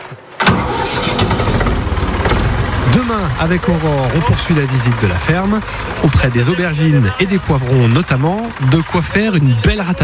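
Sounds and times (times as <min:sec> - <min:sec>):
tractor engine starting and running on a farm: 0:00.3 - 0:10.0
speech: 0:03.2 - 0:10.0.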